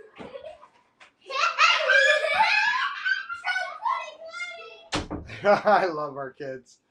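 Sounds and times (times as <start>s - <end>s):
kids' excited voices and laughter: 0.0s - 6.3s
door being shut with a sharp thud: 4.9s - 5.4s.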